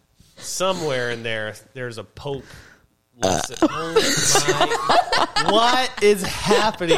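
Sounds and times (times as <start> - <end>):
speech: 0.5 - 6.9
long loud gurgling burp: 3.2 - 3.9
laughter: 3.7 - 6.9.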